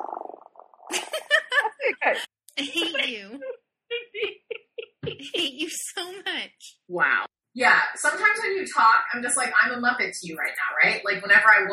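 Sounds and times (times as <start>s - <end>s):
person imitating a cat purring: 0.0s - 1.8s
laughter: 0.9s - 3.3s, 3.9s - 5.7s
speech: 1.8s - 3.5s, 5.0s - 11.7s.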